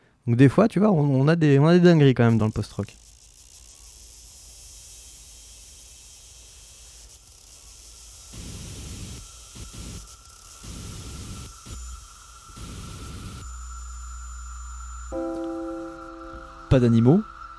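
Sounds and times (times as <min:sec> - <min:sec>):
speech: 0:00.2 - 0:03.0, 0:16.8 - 0:17.4
harsh hissing static-like noise in music: 0:04.6 - 0:17.5
thin high-pitched Electribe synth tone whining: 0:13.5 - 0:17.0.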